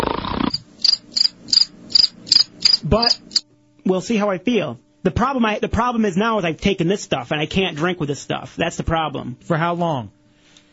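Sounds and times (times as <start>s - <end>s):
loud broadband noise burst: 0.0s - 3.4s
crickets chirping: 0.4s - 3.4s
speech: 2.9s - 3.2s, 3.9s - 10.2s.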